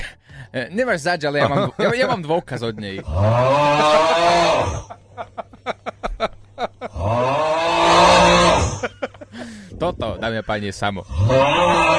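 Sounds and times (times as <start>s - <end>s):
speech: 0.5s - 5.5s, 9.8s - 11.9s
laughter: 1.4s - 7.0s, 8.6s - 9.6s
man snoring in his sleep: 3.0s - 4.9s, 6.8s - 9.0s, 11.0s - 11.9s.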